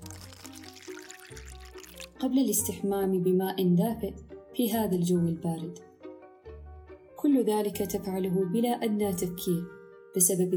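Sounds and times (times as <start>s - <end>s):
cold water from the fridge pouring into a glass: 0.0s - 2.2s
speech: 2.2s - 5.9s, 7.2s - 10.5s.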